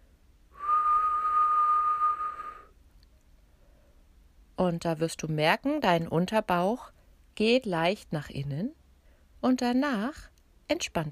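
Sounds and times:
person whistling a steady note as a voice warm-up exercise: 0.6s - 2.7s
speech: 4.6s - 8.8s, 9.4s - 11.0s.

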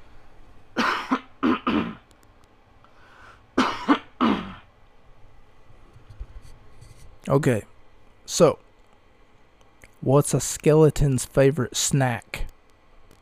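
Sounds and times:
harsh coughing: 0.8s - 2.0s, 3.6s - 4.7s
speech: 7.3s - 7.7s, 8.3s - 8.6s, 10.0s - 12.4s.

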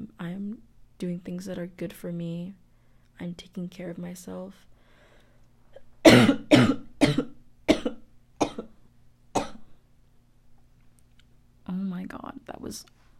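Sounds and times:
speech: 0.2s - 2.6s, 3.2s - 4.7s, 12.7s - 13.0s
painful harsh cough: 6.0s - 8.7s, 9.4s - 9.7s.

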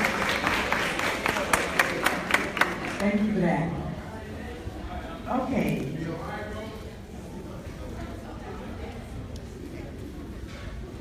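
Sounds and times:
audience applause: 0.0s - 3.2s
speech: 3.0s - 3.9s, 5.3s - 6.3s.

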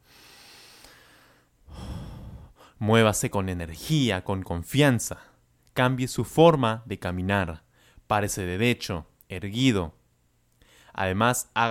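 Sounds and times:
long deep breath in and out: 0.0s - 2.8s, 7.7s - 8.1s, 10.6s - 11.0s
speech: 2.8s - 10.0s, 11.0s - 11.7s.

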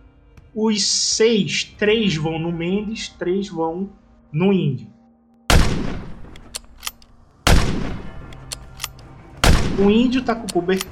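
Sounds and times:
speech: 0.6s - 4.9s, 9.8s - 10.8s
loud booming gunshots: 5.5s - 6.5s, 7.4s - 8.3s, 9.4s - 10.2s.

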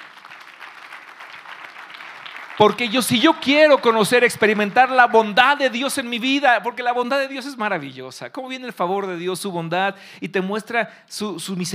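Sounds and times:
audience applauding: 0.0s - 5.7s
speech: 2.6s - 11.7s.

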